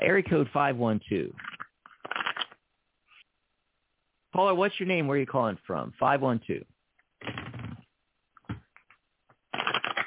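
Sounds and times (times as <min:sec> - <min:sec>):
speech: 0:00.0 - 0:01.5, 0:04.4 - 0:07.4
tarot cards being shuffled: 0:01.4 - 0:02.6, 0:08.4 - 0:10.0.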